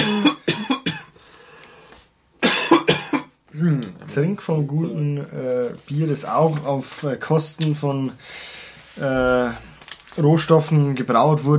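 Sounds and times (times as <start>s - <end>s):
person coughing: 0.0s - 1.2s, 2.4s - 3.8s
speech: 4.2s - 11.5s.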